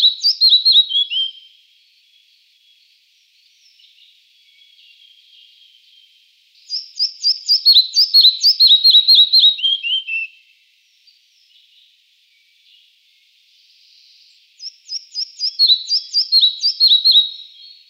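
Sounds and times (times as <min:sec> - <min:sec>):
red-breasted flycatcher song: 0:00.0 - 0:17.8.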